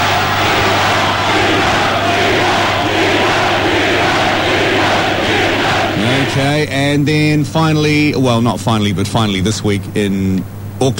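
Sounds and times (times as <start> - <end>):
large crowd roaring and chanting: 0.0 - 6.6
speech: 6.4 - 10.9.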